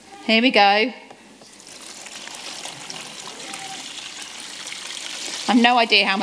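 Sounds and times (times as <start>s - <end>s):
speech: 0.2s - 1.0s, 5.5s - 6.2s
water pouring into a box: 1.3s - 6.2s.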